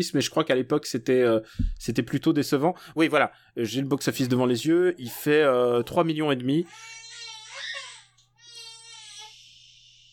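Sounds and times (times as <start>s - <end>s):
speech: 0.0s - 7.0s
baby crying: 6.6s - 10.1s.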